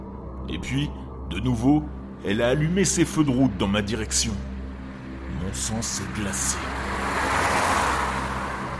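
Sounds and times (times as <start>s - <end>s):
speech: 0.5s - 4.5s, 5.4s - 7.0s
broad road noise: 2.0s - 8.7s
car engine rumbling: 4.3s - 8.7s.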